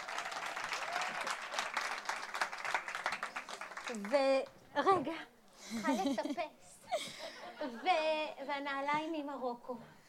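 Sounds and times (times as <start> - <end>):
sizable crowd applauding: 0.0 - 4.3
speech: 3.9 - 6.8, 7.6 - 10.0.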